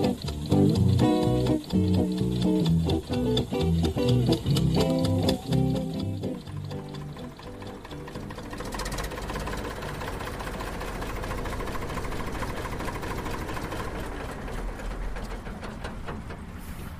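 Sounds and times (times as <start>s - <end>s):
old four-wheel-drive BM Volvo Boxer tractor engine chugging in Skåne, Sweden: 0.0s - 16.9s.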